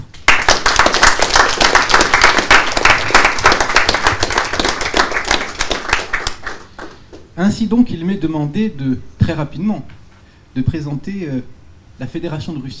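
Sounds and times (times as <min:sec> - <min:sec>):
crowd applauding: 0:00.0 - 0:07.3
speech: 0:07.4 - 0:10.0, 0:10.6 - 0:12.7.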